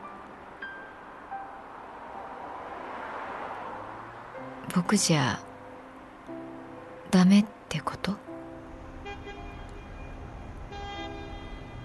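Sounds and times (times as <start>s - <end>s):
speech: 4.7s - 5.5s, 7.2s - 8.2s
car horn blaring: 9.0s - 10.1s, 10.7s - 11.8s.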